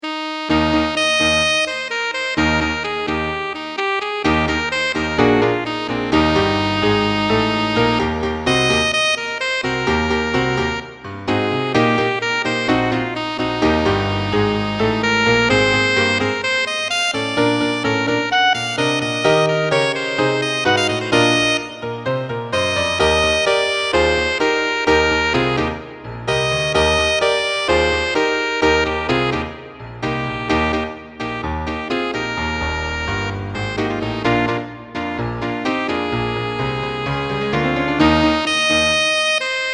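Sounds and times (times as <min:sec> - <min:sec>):
piano: 0:00.0 - 0:39.7
rock alto saxophone: 0:00.0 - 0:39.7.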